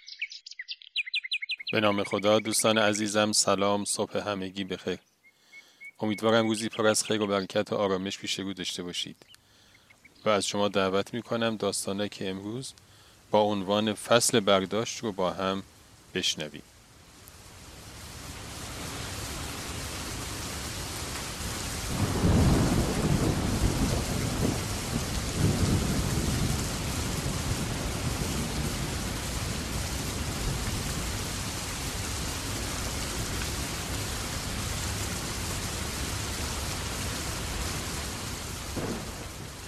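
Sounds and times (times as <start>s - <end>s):
speech: 1.7s - 5.1s, 6.0s - 9.4s, 10.2s - 16.7s
heavy rain: 10.4s - 39.6s
deep rolls of thunder rumbling: 18.4s - 39.6s.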